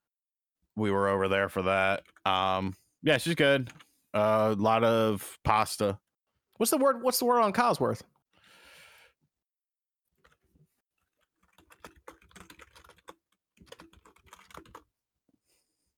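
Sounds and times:
speech: 0.8 - 6.0, 6.6 - 8.1
typing on a computer keyboard: 1.5 - 2.5, 10.2 - 14.9.

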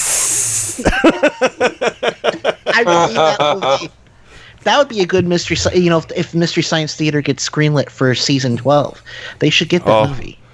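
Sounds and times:
voice imitating a hissing sound: 0.0 - 1.3
speech: 0.8 - 4.0, 4.6 - 10.4
laughter: 0.8 - 4.1.

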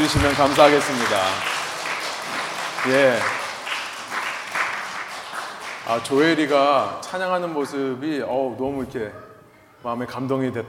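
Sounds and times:
speech: 0.0 - 1.6, 2.8 - 3.4, 5.9 - 10.6
roomful of people applauding: 0.0 - 7.8.

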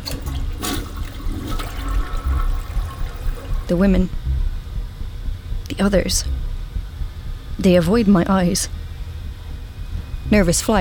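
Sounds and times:
self-cleaning bathroom toilet flushing with swirling water: 0.0 - 3.9
speech: 3.7 - 4.2, 5.7 - 6.4, 7.6 - 8.8, 10.3 - 10.7.

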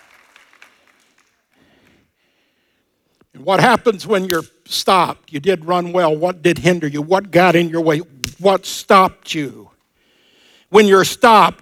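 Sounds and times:
crowd applauding: 0.0 - 2.0
sharper individual claps: 0.0 - 2.1
speech: 3.4 - 9.7, 10.7 - 11.6.

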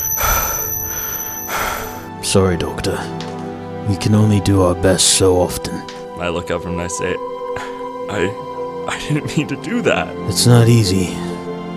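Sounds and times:
thin high-pitched ear-ringing tone: 0.0 - 2.1
speech: 2.2 - 11.3.

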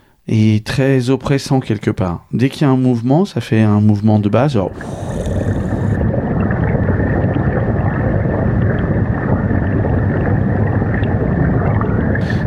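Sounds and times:
speech: 0.3 - 5.5
dull underwater rumble of moving fluid recorded with a hydrophone: 4.2 - 12.4.

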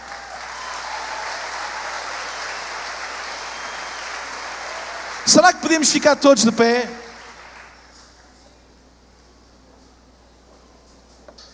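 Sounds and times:
sustained applause from a large audience: 0.0 - 8.0
speech: 5.2 - 7.0.

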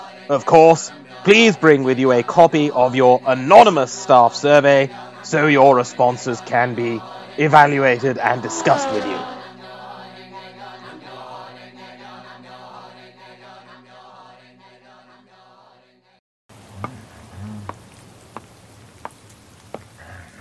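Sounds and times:
speech: 0.3 - 9.4
steady rain hissing: 16.5 - 20.4
louder rain drops tapping: 17.6 - 20.0.

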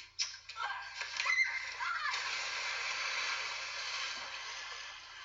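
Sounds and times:
people falling and splashing into water: 0.3 - 5.2
voices crying out: 0.5 - 2.6.

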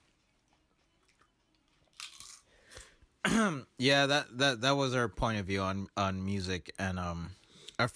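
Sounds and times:
wet crunchy chewing at the microphone: 0.1 - 3.0
speech: 3.4 - 7.9.

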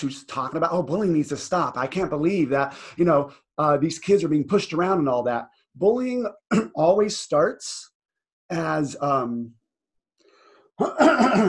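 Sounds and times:
speech: 0.0 - 7.9, 8.5 - 9.6, 10.8 - 11.4
person clearing throat: 6.5 - 6.8, 10.8 - 11.4.

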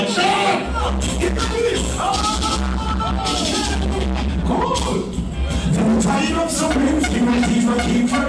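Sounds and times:
dense crowd yelling and whooping at a dancehall sound clash: 0.2 - 5.0
heavy thumping bass line at a dancehall sound clash: 0.7 - 8.2.

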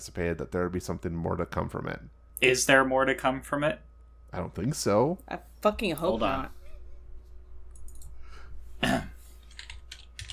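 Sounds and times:
speech: 0.0 - 6.6
person clearing throat: 8.8 - 9.2
computer keyboard typing: 9.4 - 10.3.

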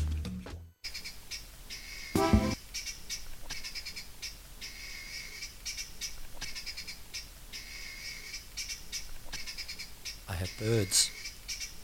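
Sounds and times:
birds chirping and twittering: 0.8 - 11.8.

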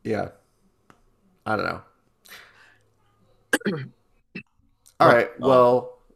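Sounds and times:
faint breathy background: 0.0 - 5.2
speech: 0.1 - 0.4, 1.5 - 2.4, 3.6 - 5.9
person clearing throat to dislodge phlegm: 3.6 - 3.9.

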